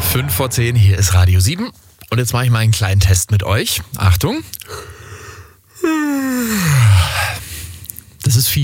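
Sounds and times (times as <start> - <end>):
speech: 0.1 - 5.0, 5.8 - 7.4, 8.3 - 8.6
person yawning: 5.8 - 7.4.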